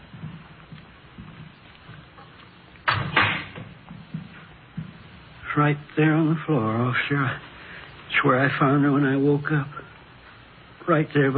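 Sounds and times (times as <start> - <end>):
door creaking as it swings: 2.2 - 5.0
speech: 5.6 - 7.5, 8.2 - 9.8, 10.9 - 11.3.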